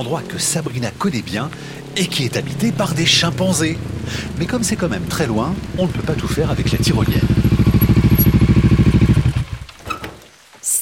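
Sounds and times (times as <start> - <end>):
speech: 0.0 - 7.4
motorcycle with sidecar engine chugging: 0.0 - 9.8.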